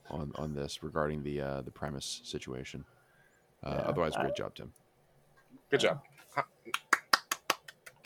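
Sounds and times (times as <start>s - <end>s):
speech: 0.2s - 3.0s, 3.6s - 4.8s, 5.7s - 6.8s
sharp hand claps: 6.7s - 8.0s.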